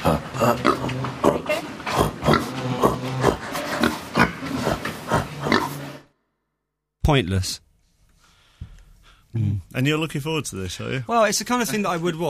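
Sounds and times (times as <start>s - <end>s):
speech: 0.0s - 1.2s, 7.1s - 7.6s, 9.3s - 12.2s
person imitating pig oinking and grunting: 0.0s - 4.4s.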